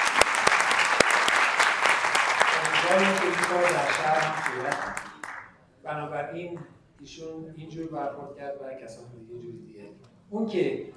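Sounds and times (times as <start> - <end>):
audience applause for an honoree at a university gathering: 0.0 - 5.5
speech: 2.9 - 5.1, 5.8 - 10.9.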